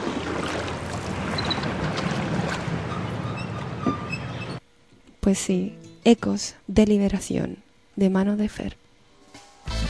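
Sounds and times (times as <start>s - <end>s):
boat gliding gently over water: 0.0s - 4.7s
speech: 5.3s - 8.8s.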